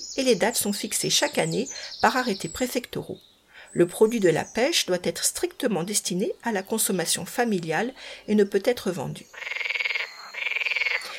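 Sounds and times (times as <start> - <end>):
speech: 0.2 - 9.8
frog croaking in fast pulsing trills: 9.2 - 11.1.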